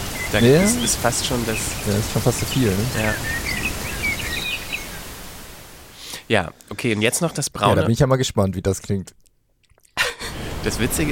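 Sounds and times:
birds chirping and tweeting in a forest: 0.0 - 5.2
light rain in a forest: 0.0 - 7.6, 10.0 - 11.1
speech: 0.3 - 3.5, 6.3 - 9.2, 10.6 - 11.1.

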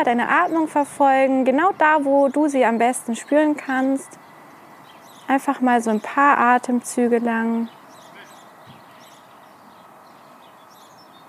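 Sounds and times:
speech: 0.0 - 4.3, 5.3 - 7.8
birds chirping outdoors: 0.0 - 11.2
outdoor ambient noise: 0.0 - 11.2.

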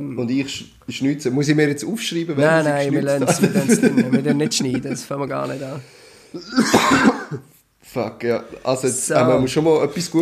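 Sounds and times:
speech: 0.0 - 10.1
laughter: 3.2 - 5.6
two people coughing at the same time: 6.4 - 7.5.

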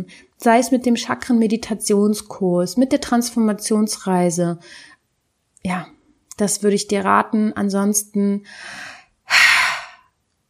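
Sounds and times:
speech: 0.0 - 4.9, 5.6 - 9.4
deep inhale: 8.5 - 10.1
loud full exhale: 8.5 - 10.1.

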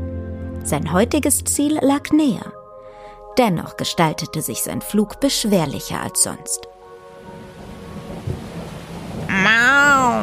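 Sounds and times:
speech: 0.6 - 2.6, 3.4 - 6.7
steady rain pouring down: 7.1 - 10.2
deep rumbling roll of thunder: 7.4 - 10.2.

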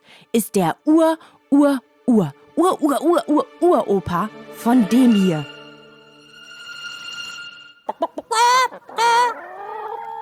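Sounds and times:
speech: 0.4 - 5.5
chicken clucking and squawking: 7.9 - 10.1.

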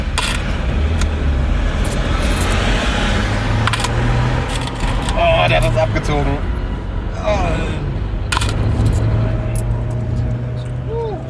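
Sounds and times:
handful of coins dropping and clinking as change: 0.0 - 5.8, 8.3 - 10.0
low rumble of an idling vehicle: 0.0 - 11.2.

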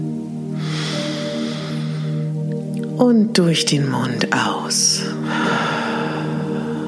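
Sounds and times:
long inhalation through the nose during a guided breathing exercise: 0.6 - 2.4, 5.2 - 6.8
speech: 3.0 - 5.8.

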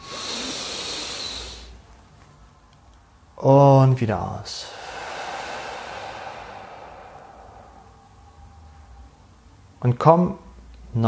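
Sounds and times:
deep inhalation during guided meditation: 0.0 - 1.8, 4.6 - 9.2
speech: 3.4 - 4.8, 9.8 - 11.0.

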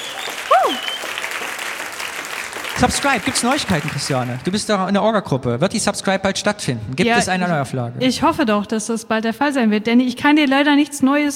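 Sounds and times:
applause: 0.0 - 4.7
speech: 2.8 - 11.3.

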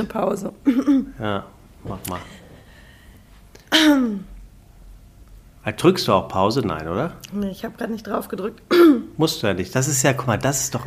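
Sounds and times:
speech: 0.0 - 2.4, 3.8 - 4.3, 5.6 - 10.8
loud harsh cough and throat clearing: 0.6 - 1.2, 3.6 - 4.3, 8.7 - 9.1.

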